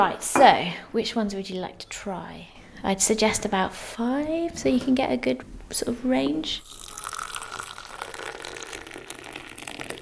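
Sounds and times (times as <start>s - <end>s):
speech: 0.0s - 6.8s
English breakfast tea pouring into cups: 6.6s - 9.9s.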